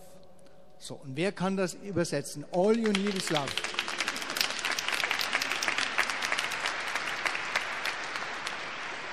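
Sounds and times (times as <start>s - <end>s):
speech: 0.9s - 3.8s
audience clapping: 2.5s - 9.0s.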